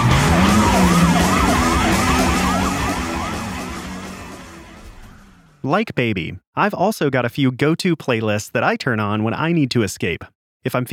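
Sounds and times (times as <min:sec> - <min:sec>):
car engine revving as the vehicle speeds off: 0:00.0 - 0:05.6
police sirens wailing: 0:00.0 - 0:05.6
speech: 0:05.7 - 0:10.9.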